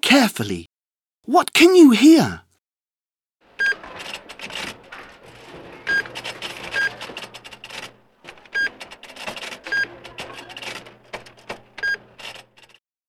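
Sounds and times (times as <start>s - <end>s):
speech: 0.0s - 2.4s
supermarket checkout till beeping: 3.6s - 12.8s
clattering and rustling of items being handled: 3.7s - 12.5s.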